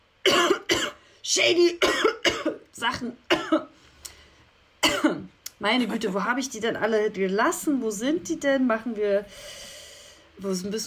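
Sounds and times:
person coughing harshly: 0:00.2 - 0:01.0, 0:01.8 - 0:02.7, 0:03.3 - 0:03.8, 0:04.8 - 0:05.3
speech: 0:01.4 - 0:02.2, 0:02.8 - 0:03.7, 0:05.6 - 0:09.7, 0:10.4 - 0:10.8
faint breath: 0:03.8 - 0:04.6, 0:09.2 - 0:10.4.

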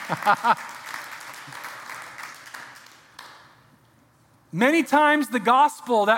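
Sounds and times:
crowd clapping: 0:00.0 - 0:03.7
speech: 0:00.1 - 0:00.8, 0:04.5 - 0:06.1.

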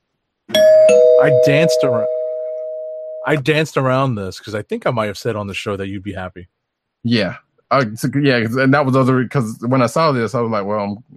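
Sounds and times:
single bright bell struck loudly: 0:00.5 - 0:03.6
speech: 0:00.9 - 0:02.1, 0:03.2 - 0:11.1.

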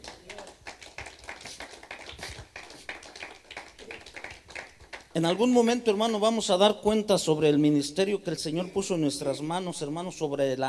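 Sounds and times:
crowd clapping: 0:00.0 - 0:05.4
speech: 0:05.2 - 0:10.6.

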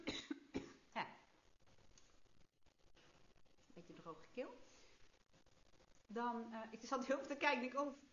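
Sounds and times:
person coughing harshly: 0:00.0 - 0:00.8
speech: 0:04.0 - 0:04.8, 0:06.1 - 0:08.1.

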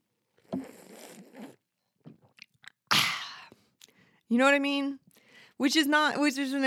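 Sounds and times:
voice imitating noisily sipping coffee: 0:00.4 - 0:01.7
soft lip smacks: 0:00.4 - 0:02.9
speech: 0:04.3 - 0:05.0, 0:05.6 - 0:06.6.

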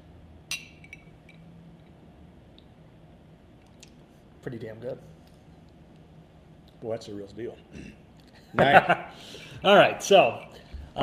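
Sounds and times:
low steady hum: 0:00.0 - 0:11.0
glasses of bourbon clinking in a toast: 0:00.5 - 0:01.5
speech: 0:04.4 - 0:05.2, 0:06.8 - 0:11.0.

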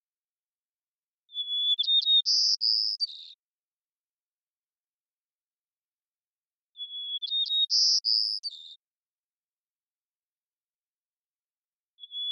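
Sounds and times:
white-crowned sparrow Zonotrichia leucophrys singing in Washington United States: 0:01.3 - 0:03.4, 0:06.8 - 0:08.9, 0:12.0 - 0:12.2.

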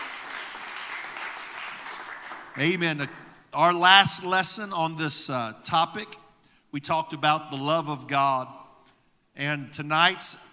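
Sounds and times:
audience clapping hands in applause: 0:00.0 - 0:02.8
speech: 0:02.6 - 0:08.6, 0:09.4 - 0:10.5.

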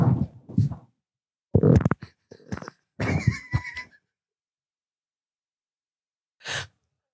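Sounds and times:
fart processed through auto-tune effect: 0:01.6 - 0:03.2
short breathy puff: 0:06.4 - 0:06.8.

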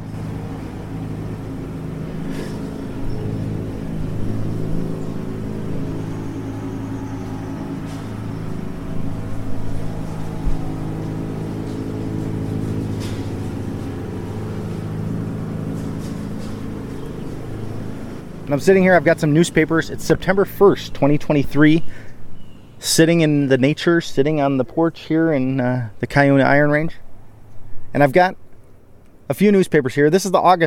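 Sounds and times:
riding mower grinding up rocks and sticks on a porch: 0:00.0 - 0:21.1
riding mower engine drone: 0:00.0 - 0:30.6
speech: 0:18.5 - 0:22.2, 0:22.8 - 0:27.0, 0:27.9 - 0:28.4, 0:29.3 - 0:30.6.

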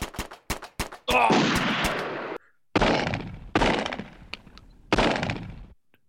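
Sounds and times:
gunshots in a shootout: 0:00.0 - 0:04.3, 0:04.9 - 0:05.8
speech: 0:01.1 - 0:01.5.

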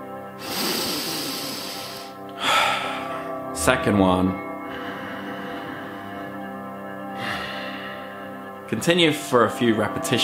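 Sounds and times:
steady humming tonal background: 0:00.0 - 0:10.2
slow deep breaths through the nose: 0:00.4 - 0:03.4, 0:04.6 - 0:08.6
speech: 0:03.6 - 0:04.4, 0:08.7 - 0:10.2.

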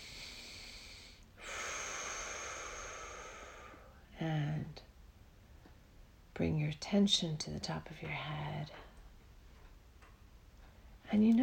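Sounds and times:
deep breath during a guided meditation: 0:00.0 - 0:04.1
speech: 0:04.2 - 0:04.9, 0:06.4 - 0:08.9, 0:11.1 - 0:11.4.

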